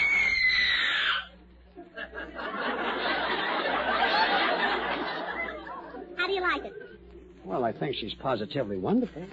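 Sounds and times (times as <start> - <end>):
woman screaming: 0.0 - 1.3
crowd laughter and noise: 1.7 - 7.0
speech: 7.7 - 9.3.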